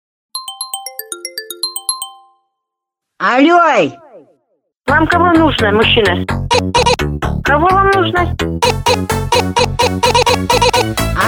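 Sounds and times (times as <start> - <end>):
phone ringing for an incoming call: 0.4 - 2.6, 8.6 - 11.0
speech: 3.2 - 4.0, 4.9 - 11.2.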